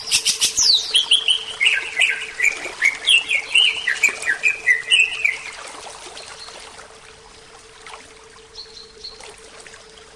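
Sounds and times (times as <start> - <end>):
Oriental magpie-robin song of rich whistled notes: 0.0 - 5.6
faint steady hum: 0.0 - 10.1.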